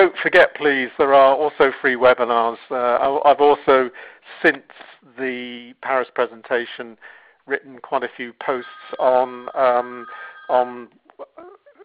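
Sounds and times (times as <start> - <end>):
speech: 0.0 - 11.6
mobile phone electronic ringtone: 8.6 - 10.8.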